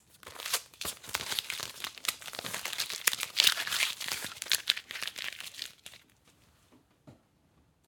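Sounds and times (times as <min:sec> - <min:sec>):
masking tape crumpling: 0:00.0 - 0:06.1.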